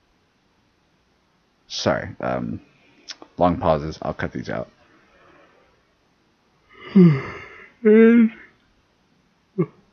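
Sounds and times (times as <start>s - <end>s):
speech: 1.8s - 2.7s, 3.4s - 4.8s, 7.0s - 8.4s, 9.6s - 9.8s
short soft vocal sound: 6.7s - 8.6s
person yawning: 6.8s - 8.5s.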